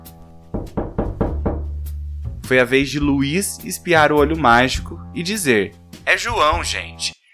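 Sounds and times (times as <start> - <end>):
knocking on a door: 0.5 - 1.8
speech: 2.5 - 7.2.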